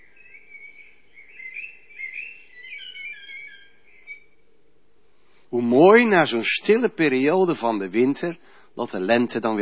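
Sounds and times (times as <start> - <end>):
common blackbird singing: 0.0 - 4.4
faint steady hum: 0.0 - 9.6
speech: 5.5 - 9.6.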